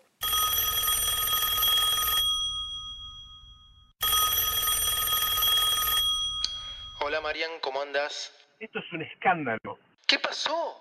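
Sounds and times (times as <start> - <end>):
old-style telephone bell ringing: 0.2 - 7.4
speech: 7.1 - 10.7.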